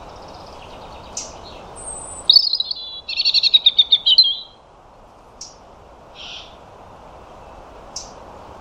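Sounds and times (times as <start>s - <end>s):
European robin singing: 0.0s - 4.6s, 5.3s - 5.6s, 7.4s - 8.2s.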